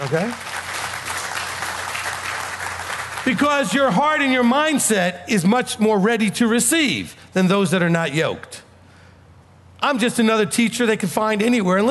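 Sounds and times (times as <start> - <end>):
speech: 0.0 - 0.5, 3.2 - 8.6, 9.8 - 11.8
audience clapping at a teaching session: 0.0 - 4.5.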